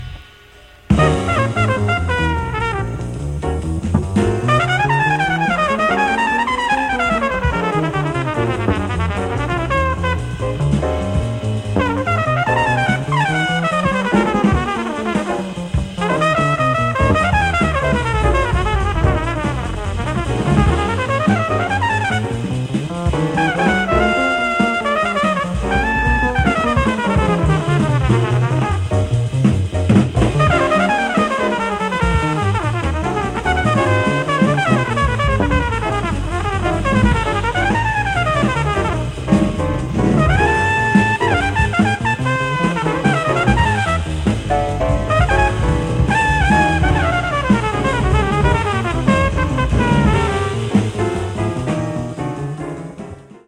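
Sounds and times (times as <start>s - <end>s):
jazz trumpet solo: 0.0s - 53.4s.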